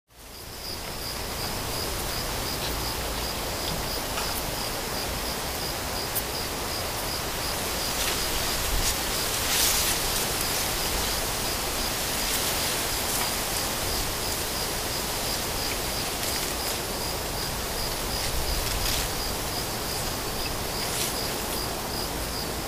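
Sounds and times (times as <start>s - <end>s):
crickets chirping: 0.1s - 22.6s.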